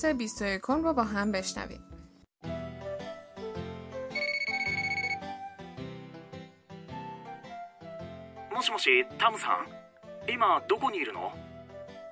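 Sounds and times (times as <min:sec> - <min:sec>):
speech: 0:00.0 - 0:01.9, 0:08.6 - 0:11.4
melodic electronic phone ringtone: 0:04.1 - 0:05.3.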